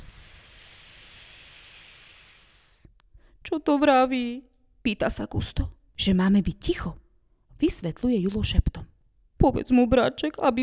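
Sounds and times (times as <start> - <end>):
snake hissing: 0.0 - 2.9
speech: 3.5 - 7.0, 7.6 - 10.6.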